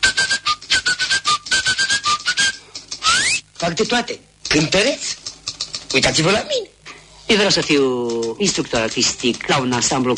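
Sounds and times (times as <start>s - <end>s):
person whistling a quick bouncy tune: 0.0s - 3.4s
speech: 3.7s - 5.2s, 5.9s - 6.7s, 7.3s - 10.1s.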